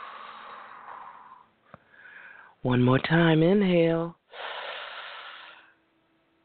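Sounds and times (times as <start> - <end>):
soft airy exhale during a guided breathing exercise: 0.0 - 2.6, 4.3 - 5.8
speech: 2.6 - 4.2.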